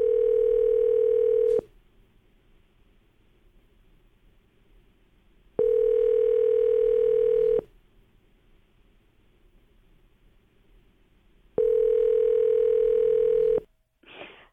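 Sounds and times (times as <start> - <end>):
telephone ringback tone through the line: 0.0 - 1.6, 5.6 - 7.6, 11.6 - 13.6.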